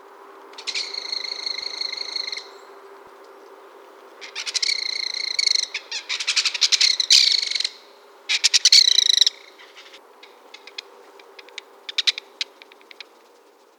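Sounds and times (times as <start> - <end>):
belted kingfisher call: 0.6 - 2.7, 4.2 - 10.0.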